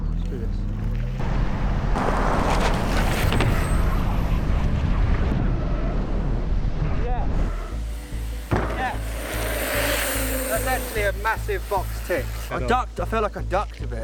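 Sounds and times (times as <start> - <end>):
car engine roaring racing through a lorry trailer: 1.1 - 6.8, 7.4 - 12.5
heavy wind buffeting: 1.2 - 11.1
speech: 11.3 - 14.0.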